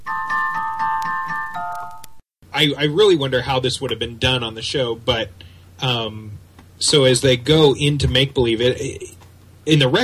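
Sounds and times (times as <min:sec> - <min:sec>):
chime melody played on a record: 0:00.0 - 0:02.2
speech: 0:02.6 - 0:10.0.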